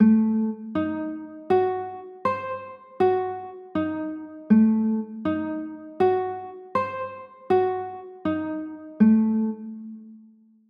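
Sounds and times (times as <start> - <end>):
F sharp diminished chords: 0.0 - 10.0.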